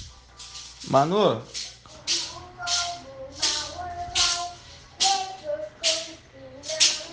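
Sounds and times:
soft rattling or shaking bursts in a steady rhythm: 0.0s - 7.1s
speech: 0.9s - 1.6s
young child singing a high wavering tune at home: 1.9s - 7.1s.

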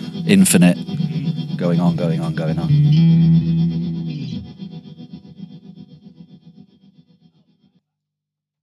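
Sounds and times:
speech: 0.3s - 0.9s, 1.6s - 3.5s
guitar chord through a plate reverb pedal: 0.8s - 4.7s.

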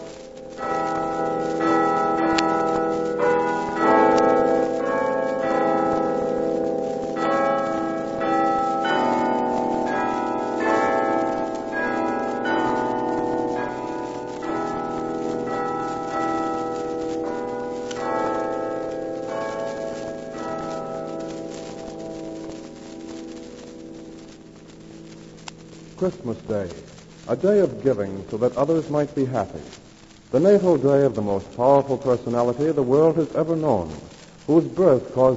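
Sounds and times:
carillon bells ringing a steady melody: 0.6s - 23.4s
speech: 26.0s - 35.3s.

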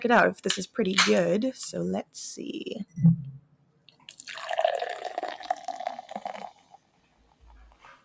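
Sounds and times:
speech: 0.0s - 3.3s
low hum: 2.8s - 3.4s
soft thump: 3.0s - 3.4s
key lime beer pouring into a glass: 4.1s - 6.8s.

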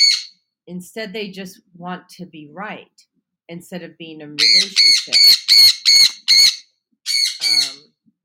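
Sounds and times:
parrot squawking: 0.0s - 0.4s, 4.4s - 7.8s
speech: 0.7s - 6.6s, 7.5s - 7.9s.

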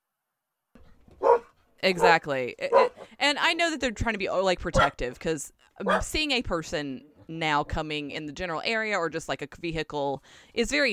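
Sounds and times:
dog barking: 1.2s - 3.1s, 4.8s - 5.0s, 5.8s - 6.2s
speech: 1.8s - 10.9s.

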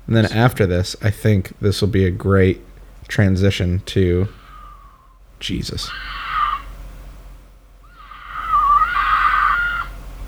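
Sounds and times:
speech: 0.1s - 4.4s, 5.4s - 6.2s
mountain lion screaming: 4.2s - 10.2s.

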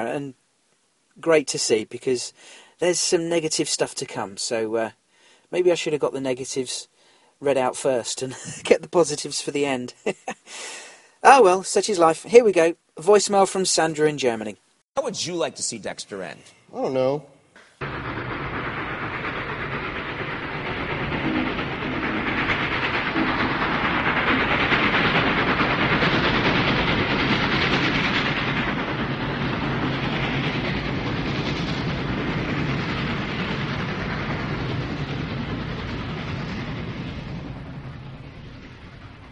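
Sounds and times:
speech: 0.0s - 0.4s, 1.2s - 18.1s
train rolling on rails heard from inside the carriage: 17.8s - 39.3s.

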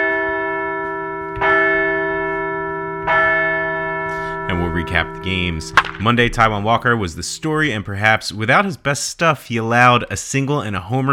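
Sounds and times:
large bell tolling to celebrate a baseball team's back-to-back wins: 0.1s - 7.8s
speech: 4.8s - 11.1s.

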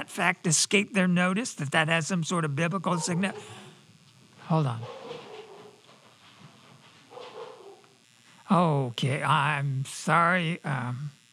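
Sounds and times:
speech: 0.1s - 3.7s, 4.5s - 5.1s, 8.5s - 11.2s
dog barking and whining: 2.9s - 3.5s, 4.8s - 5.8s, 7.0s - 7.9s.

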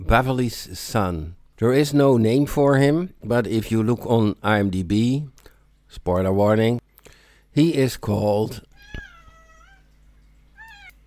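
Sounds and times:
faint steady hum: 0.0s - 11.0s
speech: 0.1s - 5.3s, 5.9s - 6.8s, 7.6s - 8.7s
cat meowing: 8.7s - 10.0s, 10.6s - 11.0s.

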